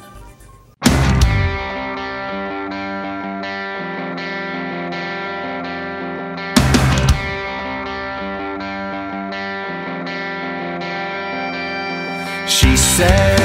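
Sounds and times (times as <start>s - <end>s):
pop-punk rock song with distorted electric guitar riff: 0.8s - 13.4s.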